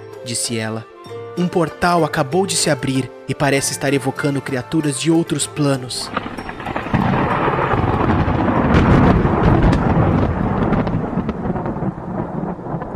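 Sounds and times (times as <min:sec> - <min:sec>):
speech: 0:00.2 - 0:06.4
crackling bursts: 0:05.9 - 0:12.9
deep rolling thunder in a thunderstorm: 0:06.1 - 0:12.9.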